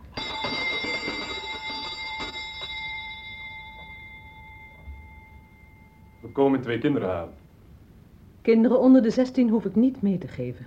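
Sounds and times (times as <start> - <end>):
doorbell ringing: 0.0 - 7.0
speech: 6.4 - 7.4, 8.4 - 10.6.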